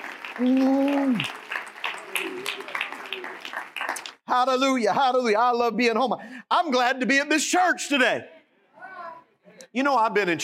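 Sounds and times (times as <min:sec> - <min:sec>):
church audience clapping hands during a morning service: 0:00.0 - 0:04.3
speech: 0:00.4 - 0:01.4, 0:02.5 - 0:08.4, 0:09.7 - 0:10.4.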